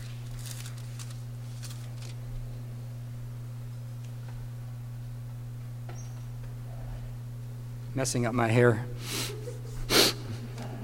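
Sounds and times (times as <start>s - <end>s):
low steady hum: 0.0s - 10.8s
speech: 8.0s - 9.3s
person with the sniffles sniffing through the nose: 9.0s - 10.4s.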